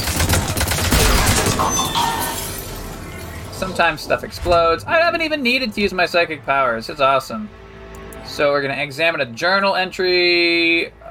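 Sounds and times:
enemy turrets firing in a shooter video game: 0:00.0 - 0:02.0
speech: 0:03.6 - 0:07.6, 0:08.3 - 0:11.0.

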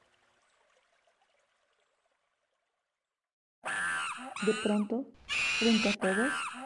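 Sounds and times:
monkeys howling among trees: 0:03.7 - 0:06.6
speech: 0:04.2 - 0:06.6.

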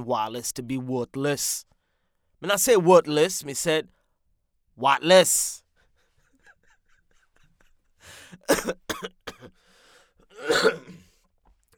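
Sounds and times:
speech: 0:00.0 - 0:01.7, 0:02.4 - 0:04.0, 0:04.8 - 0:05.6, 0:08.0 - 0:09.2, 0:10.4 - 0:11.0
person coughing: 0:08.3 - 0:09.6, 0:10.3 - 0:11.2
throat clearing: 0:08.4 - 0:09.6, 0:10.3 - 0:11.2.

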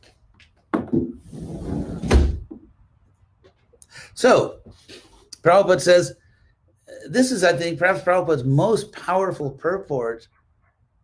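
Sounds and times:
speech: 0:00.9 - 0:01.6, 0:04.2 - 0:06.2, 0:07.1 - 0:10.4
wooden door being pushed shut: 0:01.6 - 0:02.7.

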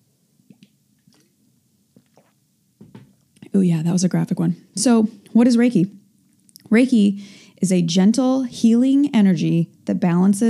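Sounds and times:
person sipping water: 0:00.4 - 0:02.5
swallowing: 0:00.5 - 0:02.4
speech: 0:03.6 - 0:06.0, 0:06.7 - 0:10.4.

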